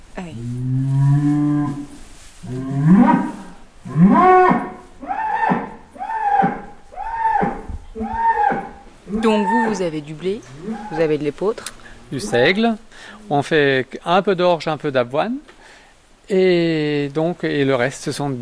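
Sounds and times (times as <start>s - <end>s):
speech: 0.2s - 0.8s, 9.8s - 15.5s, 16.3s - 18.4s
cow guarding its herd lowing at a stranger: 0.6s - 9.9s, 10.5s - 11.2s, 12.0s - 12.8s.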